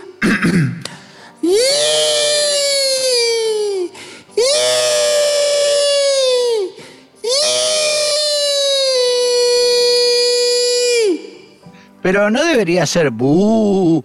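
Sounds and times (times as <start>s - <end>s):
person screaming in terror: 1.4s - 11.5s
speech: 12.1s - 14.0s.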